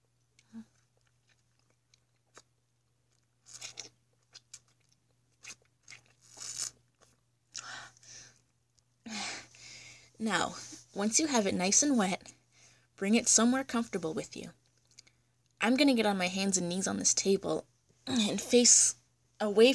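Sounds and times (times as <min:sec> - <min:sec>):
soft chewing: 0:00.0 - 0:09.6, 0:14.6 - 0:15.6
crunchy bites of fresh cucumber: 0:03.1 - 0:07.2
speech: 0:10.2 - 0:12.3, 0:13.0 - 0:14.6, 0:15.6 - 0:19.7.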